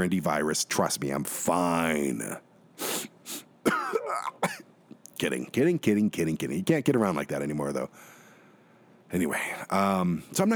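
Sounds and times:
speech: 0.0s - 2.5s, 5.2s - 8.1s, 9.1s - 10.5s
breathy coughs: 3.6s - 4.7s
throat clearing: 3.7s - 4.6s.

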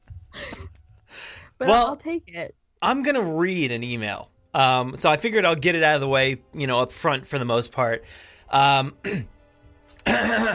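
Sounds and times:
speech: 1.6s - 9.3s, 10.0s - 10.5s
person clearing throat: 10.0s - 10.5s.

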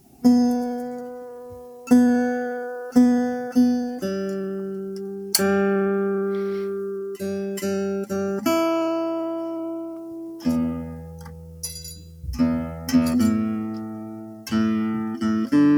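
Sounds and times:
acoustic guitar with new strings being tuned: 0.0s - 15.7s.

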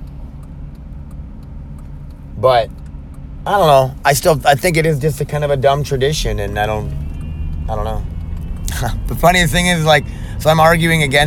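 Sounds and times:
faint light ticks: 0.0s - 3.3s
road traffic with cars passing: 0.0s - 11.2s
speech: 2.4s - 2.8s, 3.4s - 7.0s, 7.7s - 8.1s, 8.7s - 11.2s.

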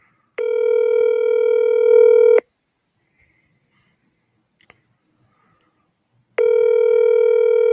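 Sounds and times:
phone ringback tone over a speakerphone: 0.4s - 2.4s, 6.4s - 7.7s.

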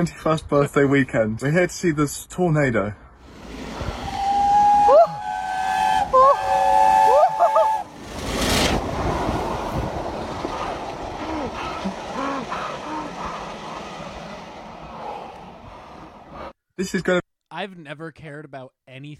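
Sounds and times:
speech: 0.0s - 3.0s, 16.9s - 19.1s
burst of hissing steam: 3.2s - 16.3s
steam train whistle blasts: 4.0s - 7.9s
murmuring crowd with faint voices: 11.2s - 15.5s.

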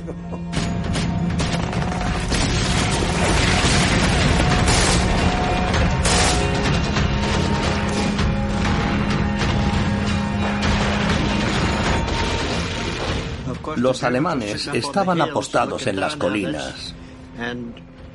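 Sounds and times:
speech: 0.0s - 0.5s, 13.8s - 17.9s
continuous gunfire in a battle soundscape: 0.5s - 13.6s
heavy booming explosions in a battle soundscape: 0.6s - 13.7s.

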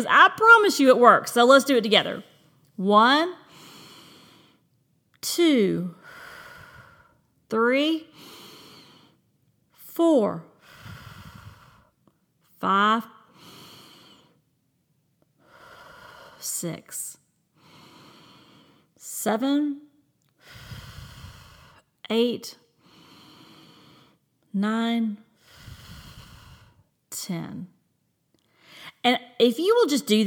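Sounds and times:
speech: 0.0s - 3.4s, 5.2s - 6.0s, 7.5s - 8.3s, 10.0s - 10.5s, 12.6s - 13.2s, 16.4s - 17.1s, 19.2s - 19.8s, 22.1s - 22.6s, 24.5s - 25.2s, 27.2s - 27.8s, 29.0s - 30.2s
deep breaths in and out: 3.4s - 4.8s, 5.9s - 7.4s, 8.0s - 14.6s, 15.2s - 24.6s, 25.2s - 27.1s, 28.4s - 29.0s.

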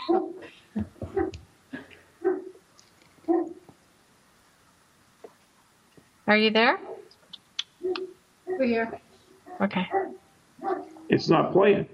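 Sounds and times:
dogs barking and whimpering: 0.0s - 1.4s, 2.2s - 2.6s, 3.3s - 3.7s, 7.8s - 11.2s
speech: 0.1s - 0.9s, 6.3s - 6.9s, 8.6s - 9.0s, 9.6s - 10.2s, 11.1s - 11.9s.

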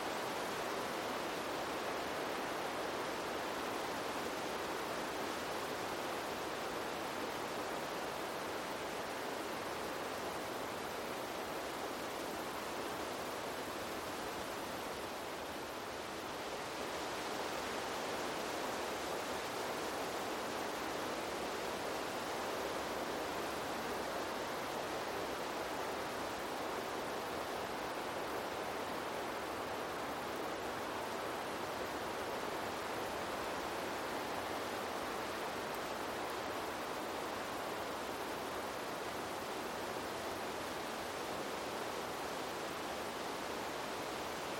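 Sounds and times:
wind rustling leaves of forest trees: 0.0s - 44.5s.

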